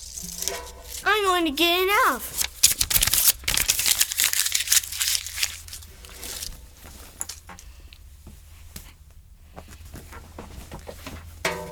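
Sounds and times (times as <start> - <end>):
homework paper being crumpled and ripped: 0.0 - 7.4
speech: 0.2 - 2.4.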